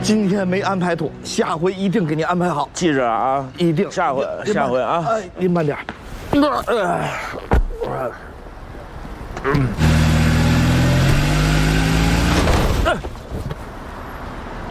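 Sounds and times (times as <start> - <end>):
speech: 0.1 - 8.3, 9.4 - 9.8
car engine revving: 9.4 - 12.8
car crashing into a parked car outside a hotel entrance: 12.3 - 13.5.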